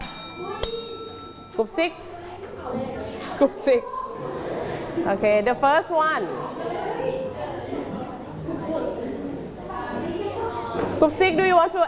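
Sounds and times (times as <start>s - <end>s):
tabletop bell struck with a sharp ding: 0.0s - 1.8s
room noise: 0.0s - 11.8s
speech: 1.6s - 7.2s, 11.0s - 11.8s.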